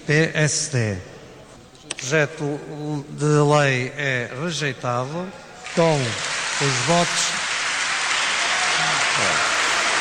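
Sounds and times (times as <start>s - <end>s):
speech: 0.1s - 1.1s, 2.0s - 7.4s
parliament deputies and gallery applauding in a big hall: 5.6s - 9.9s.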